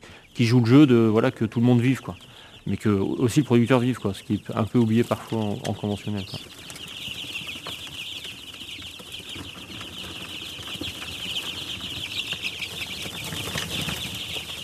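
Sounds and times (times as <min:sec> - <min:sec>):
week-old chicks peeping in a high-pitched chorus: 0:00.0 - 0:14.6
speech: 0:00.4 - 0:06.7.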